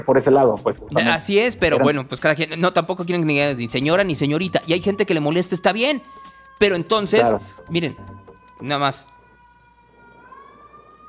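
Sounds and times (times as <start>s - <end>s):
speech: 0.0s - 9.1s
ambulance siren wailing: 3.1s - 11.0s.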